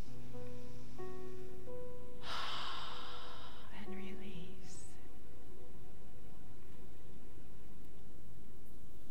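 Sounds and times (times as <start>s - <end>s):
soft sustained tones: 0.0s - 9.1s
deep breath drawn in during a guided relaxation breathing exercise: 2.2s - 3.8s.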